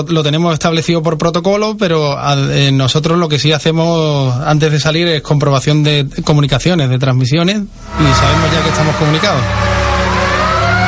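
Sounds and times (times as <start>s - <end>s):
speech: 0.0s - 9.9s
ambulance siren wailing: 7.8s - 10.8s
deep engine rumble: 7.8s - 10.8s.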